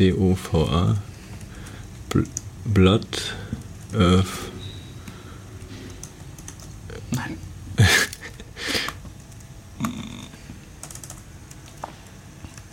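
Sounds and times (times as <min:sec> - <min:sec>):
speech: 0:00.0 - 0:01.1, 0:02.1 - 0:04.5
typing on a computer keyboard: 0:05.9 - 0:06.8, 0:10.8 - 0:11.9.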